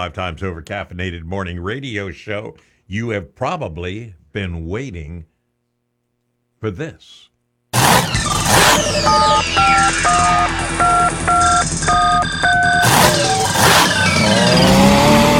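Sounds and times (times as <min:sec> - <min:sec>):
speech: 0:00.0 - 0:05.3, 0:06.6 - 0:13.4
short electronic beeping tones: 0:07.8 - 0:14.8
tractor-pull engine revving and roaring: 0:07.8 - 0:15.3.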